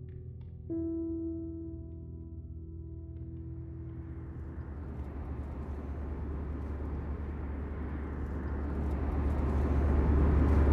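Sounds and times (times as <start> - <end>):
jet engines droning heard from inside an airplane cabin: 2.6 - 10.7.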